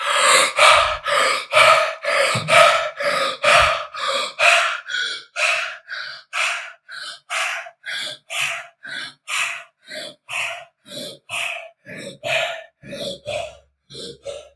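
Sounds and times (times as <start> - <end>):
rapid rhythmic breathing in a breathwork exercise: 0.0 - 14.5.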